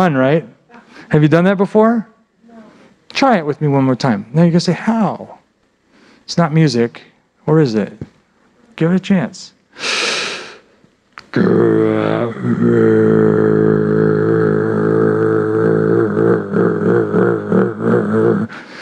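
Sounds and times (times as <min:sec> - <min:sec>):
speech: 0:00.0 - 0:02.1, 0:03.2 - 0:05.4, 0:06.3 - 0:08.1, 0:08.8 - 0:10.0, 0:11.4 - 0:13.8
throat singing drone rich in stacked overtones: 0:11.2 - 0:18.8.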